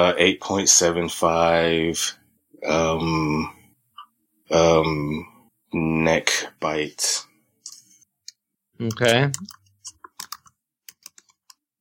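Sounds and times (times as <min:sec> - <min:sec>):
speech: 0:00.0 - 0:03.6, 0:04.5 - 0:07.3, 0:08.8 - 0:09.6
typing and clicking on computer keyboard: 0:08.8 - 0:11.7.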